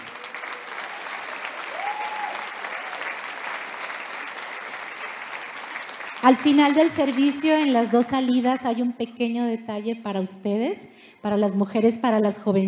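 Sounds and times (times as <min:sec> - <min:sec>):
audience applause: 0:00.0 - 0:08.0
speech: 0:06.2 - 0:12.6.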